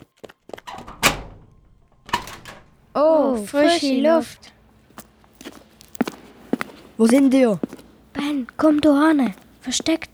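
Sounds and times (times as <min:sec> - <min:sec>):
heavy door thunking open: 0:00.6 - 0:03.0
speech: 0:03.0 - 0:04.6, 0:07.0 - 0:10.1.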